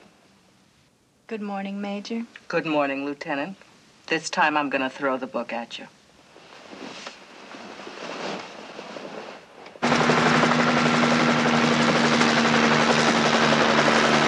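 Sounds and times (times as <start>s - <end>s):
quiet noise: 0.0s - 9.8s
speech: 1.3s - 6.0s
helicopter rotor thrum and engine whine: 9.8s - 14.2s.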